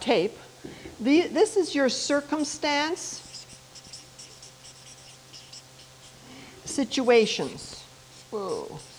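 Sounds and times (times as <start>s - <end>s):
speech: 0.0s - 3.2s, 6.8s - 8.9s
red marker pen running dry squeaking across a surface: 2.2s - 8.9s.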